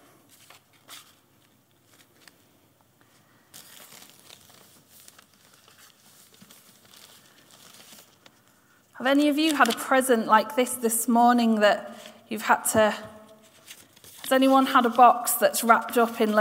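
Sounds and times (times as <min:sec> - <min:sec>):
paper with writing being crumpled and unfolded: 0:00.3 - 0:02.4, 0:03.1 - 0:09.9, 0:13.3 - 0:15.2
speech: 0:09.0 - 0:13.1, 0:14.3 - 0:16.3.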